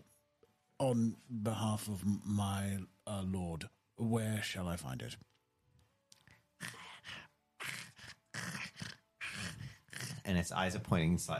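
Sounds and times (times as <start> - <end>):
speech: 0.8 - 5.3, 10.3 - 11.3
human voice imitating a creature's growling guttural howl: 7.6 - 10.3.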